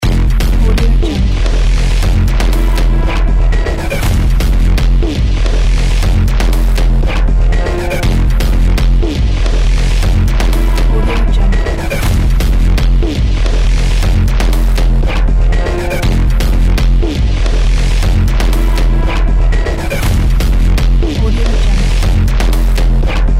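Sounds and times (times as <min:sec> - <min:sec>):
thriller horror music loop: 0:00.0 - 0:23.3.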